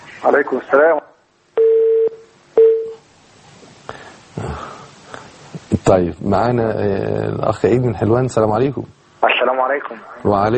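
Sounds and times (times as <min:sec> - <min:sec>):
speech: 0:00.2 - 0:01.1, 0:05.9 - 0:10.5
telephone line beeps as a caller connects to a call-in line: 0:01.6 - 0:03.0.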